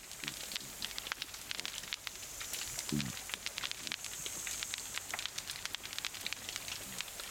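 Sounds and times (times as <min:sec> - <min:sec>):
pistol shrimp snapping underwater: 0:00.0 - 0:07.3
cod grunting: 0:02.9 - 0:04.0.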